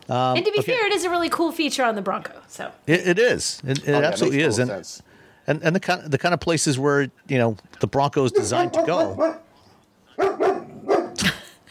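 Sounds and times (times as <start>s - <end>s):
speech: 0.1s - 9.4s
dog barking in short sharp yaps: 8.3s - 9.5s, 10.2s - 11.2s.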